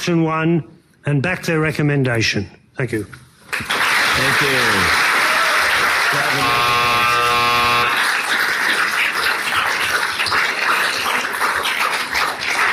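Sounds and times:
speech: 0.0 - 5.0, 6.1 - 6.8
crowd noise at a council meeting: 3.6 - 12.7
electronic timer buzzer ending a public speech at a council meeting: 6.1 - 8.1.

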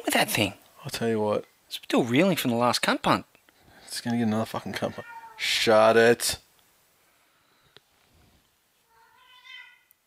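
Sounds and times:
speech: 0.1 - 3.3, 3.9 - 6.4
cat meowing loudly: 4.9 - 5.5, 8.9 - 9.9.

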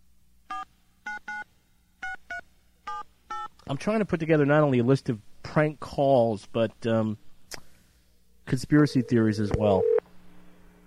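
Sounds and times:
faint hum: 0.0 - 10.8
speech: 3.7 - 7.6, 8.5 - 9.9
touch-tone beeps dialing a phone number: 8.8 - 10.0.

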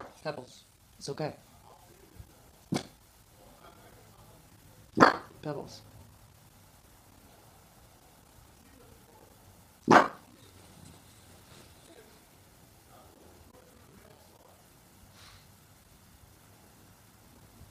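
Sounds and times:
speech: 0.2 - 1.5, 5.0 - 5.9
dog barking: 5.0 - 5.3, 9.9 - 10.3.

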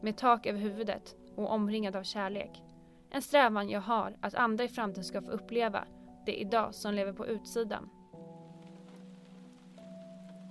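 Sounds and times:
speech: 0.0 - 8.0
steady rain pattering on a surface: 8.2 - 10.4.

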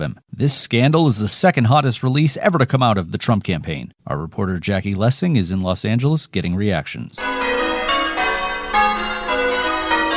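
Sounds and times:
speech: 0.0 - 8.0
bells ringing in a cascade of overlapping strikes: 7.2 - 10.1.

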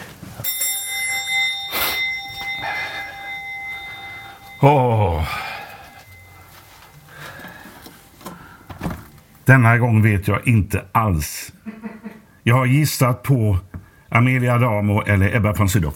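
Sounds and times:
noise: 0.0 - 15.9
doorbell ringing at a house door: 0.4 - 8.1
speech: 4.6 - 5.5, 9.5 - 11.6, 12.5 - 15.9.

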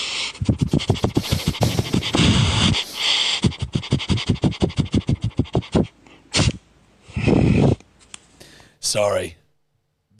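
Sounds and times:
person sniffing rapidly like a dog: 0.0 - 7.8
speech: 8.9 - 9.4.

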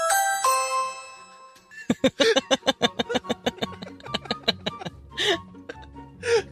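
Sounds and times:
electronic doorbell chime with two sustained tones: 0.0 - 1.8
laughter: 1.8 - 5.8.

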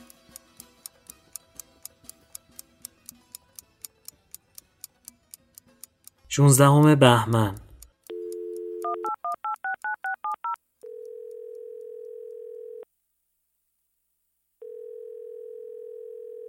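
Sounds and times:
speech: 6.4 - 7.6
telephone keypad beeps dialing a phone call: 8.1 - 12.2
telephone dial tone: 8.1 - 12.8, 14.6 - 16.4.

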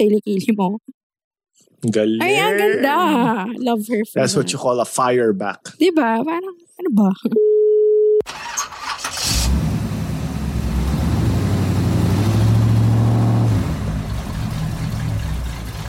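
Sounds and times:
speech: 0.0 - 1.0, 1.6 - 7.4
car engine cranking without catching: 8.3 - 15.8.

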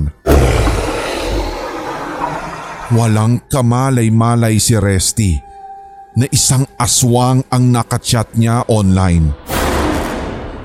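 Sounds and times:
fierce dog growling with a deep rough rumble: 0.3 - 3.0
speech: 2.9 - 5.5, 6.2 - 9.5.

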